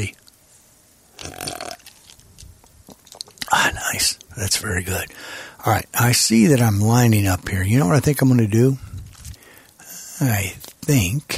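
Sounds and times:
speech: 0.0s - 0.2s, 3.9s - 8.9s, 10.2s - 11.3s
faint mouth and swallowing noises: 1.1s - 4.4s, 8.8s - 9.8s
person slurping a drink: 1.2s - 2.0s.

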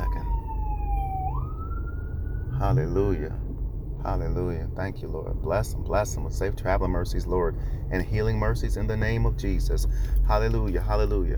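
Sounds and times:
ambulance siren wailing: 0.0s - 3.2s
road and engine rumble inside a moving car: 0.0s - 11.3s
speech: 2.6s - 11.3s.

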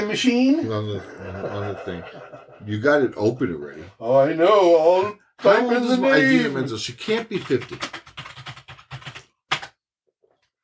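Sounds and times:
speech: 0.0s - 8.0s
laughter: 0.6s - 4.0s
typing on a computer keyboard: 7.4s - 9.8s.

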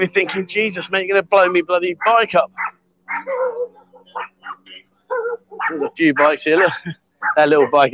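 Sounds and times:
speech: 0.0s - 7.9s
small dog yapping at a jet ski park: 0.2s - 1.0s, 2.0s - 7.7s.

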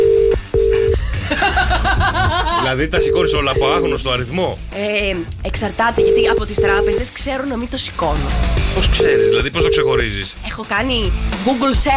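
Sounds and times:
phone line ringing unanswered: 0.0s - 1.0s, 3.0s - 4.0s, 6.0s - 7.1s, 8.8s - 10.1s
laughter: 1.0s - 4.1s
speech: 2.7s - 11.9s.

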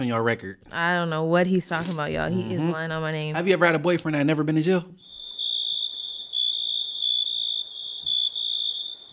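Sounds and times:
speech: 0.0s - 5.1s
crickets chirping in a steady high-pitched trill: 4.9s - 9.1s.

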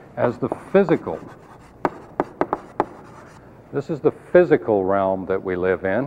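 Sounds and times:
speech: 0.2s - 1.5s, 3.7s - 6.0s
pen or marker drawing a line on a diagram: 0.5s - 3.4s.

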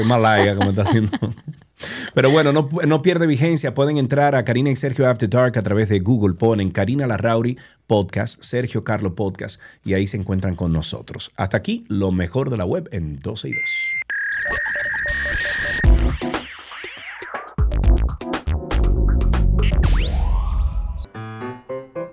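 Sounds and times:
speech: 0.0s - 1.5s, 2.1s - 16.0s
laughter: 0.0s - 2.7s
short loud electronic show jingle: 14.1s - 17.6s
bouncy synth melody of quick plucky notes: 14.1s - 21.8s
whooshing sweeps and beeps: 14.3s - 17.5s.

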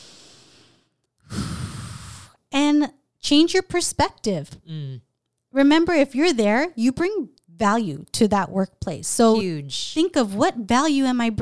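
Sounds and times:
deep breath: 0.0s - 2.4s
speech: 2.8s - 11.4s.

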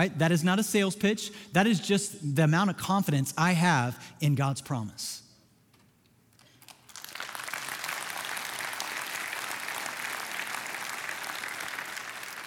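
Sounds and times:
speech: 0.0s - 5.2s
large audience applauding: 6.6s - 12.4s.

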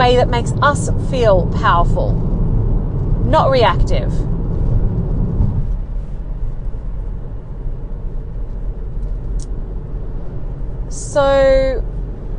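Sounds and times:
low car engine rumble of a car driven slowly: 0.0s - 12.3s
road noise: 0.0s - 12.3s
speech: 0.1s - 2.3s, 3.2s - 4.3s, 11.1s - 11.9s.

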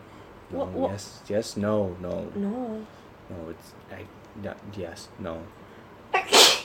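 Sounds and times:
speech: 0.5s - 5.6s
sneeze: 6.2s - 6.6s.

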